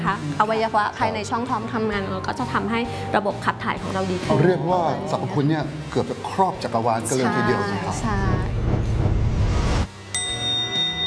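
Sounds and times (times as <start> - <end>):
dense noisy background: 0.0 - 11.0
speech: 0.1 - 8.6
single bright bell strike ringing: 10.0 - 11.0.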